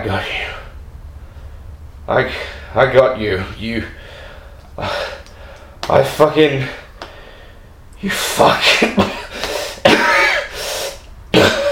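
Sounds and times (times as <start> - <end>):
speech: 0.0 - 0.6, 2.1 - 4.0, 4.8 - 5.1, 5.9 - 6.8, 8.0 - 9.1
person coughing: 8.3 - 11.7.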